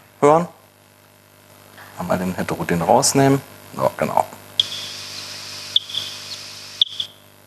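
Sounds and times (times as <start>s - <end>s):
faint steady hum: 0.0s - 7.4s
speech: 0.2s - 0.6s, 2.0s - 4.3s
Barbastelle echolocation calls played back ten times slower: 4.6s - 7.3s.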